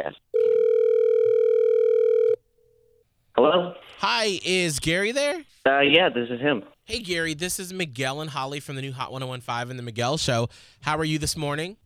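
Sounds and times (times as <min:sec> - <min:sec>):
speech: 0:00.0 - 0:00.2, 0:03.5 - 0:11.8
telephone ringback tone of an outgoing call: 0:00.4 - 0:02.4.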